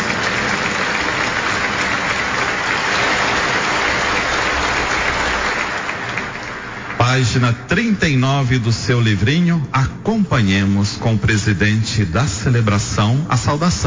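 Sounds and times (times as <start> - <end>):
audience at a church celebration applauding: 0.0 - 8.2
speech: 7.3 - 13.8.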